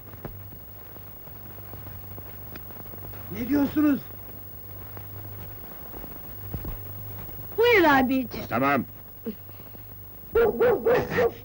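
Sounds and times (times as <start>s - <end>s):
speech: 3.3s - 4.1s, 7.9s - 9.4s, 10.4s - 11.4s
dog barking: 10.4s - 11.4s.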